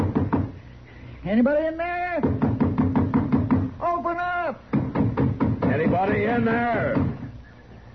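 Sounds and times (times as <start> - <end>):
firm quick knocks on the wooden door of a house: 0.0 - 0.5, 2.2 - 3.7, 4.7 - 7.3
speech: 1.2 - 2.5, 5.8 - 7.1.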